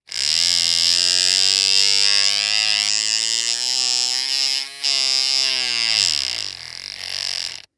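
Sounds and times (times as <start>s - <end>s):
small industrial tool motor running: 0.0s - 7.7s.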